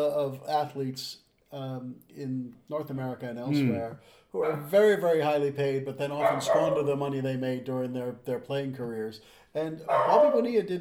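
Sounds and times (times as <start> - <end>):
speech: 0.0 - 10.8
dog barking: 6.2 - 6.9, 9.9 - 10.5.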